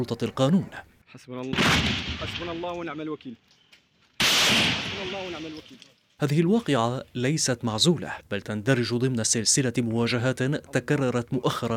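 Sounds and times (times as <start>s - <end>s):
speech: 0.0s - 3.5s, 4.5s - 11.7s
intermittent gunfire during army sweep operations: 4.2s - 5.4s.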